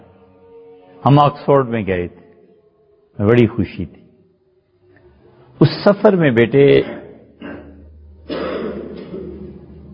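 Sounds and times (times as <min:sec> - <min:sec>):
speech: 0:01.0 - 0:02.2, 0:03.2 - 0:04.0, 0:05.6 - 0:07.0
child coughing in a room: 0:06.8 - 0:09.5.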